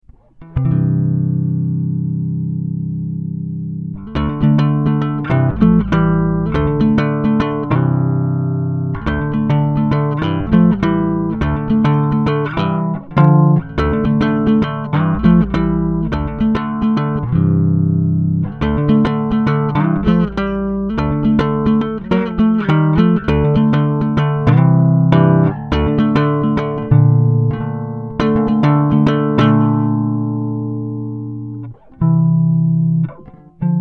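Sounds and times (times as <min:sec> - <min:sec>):
bass sound sample blend: 0:00.0 - 0:33.7.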